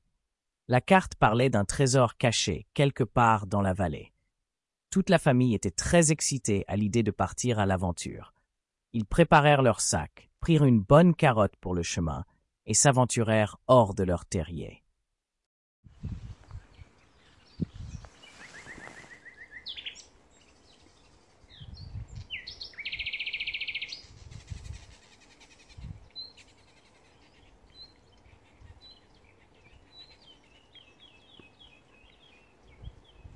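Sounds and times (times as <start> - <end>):
speech: 0.7 - 4.1, 4.9 - 14.8
leaves rustling in wind: 16.1 - 21.6, 23.8 - 28.6
forest birds chirping and calling: 16.5 - 33.3.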